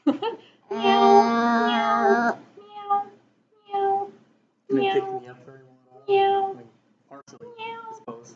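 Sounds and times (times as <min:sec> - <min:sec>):
person testing a microphone mimicking cat meows: 0:00.7 - 0:04.1, 0:04.7 - 0:05.2, 0:06.1 - 0:06.6.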